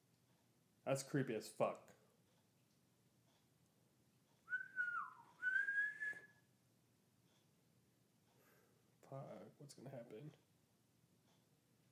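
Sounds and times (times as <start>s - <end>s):
speech: 0.9s - 1.9s, 9.6s - 10.5s
person whistling a short wavering tune: 4.5s - 6.4s.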